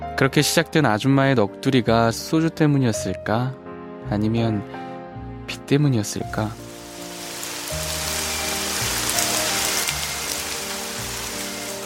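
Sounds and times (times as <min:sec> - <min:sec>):
speech: 0:00.2 - 0:04.9, 0:05.5 - 0:06.6
heavy rain shower: 0:06.6 - 0:11.8.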